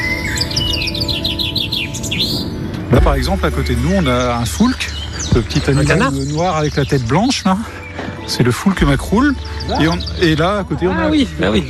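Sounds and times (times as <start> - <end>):
birds singing outdoors with rapid chirps and whistled trills: 0.0 - 11.6
continuous low rumble of noise: 0.9 - 6.7
speech: 2.9 - 11.6.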